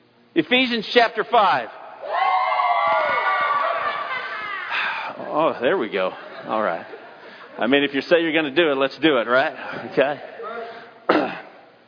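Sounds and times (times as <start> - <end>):
speech: 0.4 - 1.8, 5.2 - 7.0, 7.6 - 10.4
youth group screaming and yelling in cheering: 2.0 - 5.3
laughter: 3.4 - 7.9.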